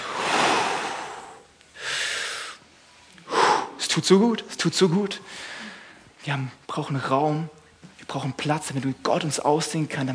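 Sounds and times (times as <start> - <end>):
deep airy breathing close to the microphone: 0.0 - 3.8, 5.2 - 6.2
speech: 4.0 - 5.6, 6.2 - 10.1.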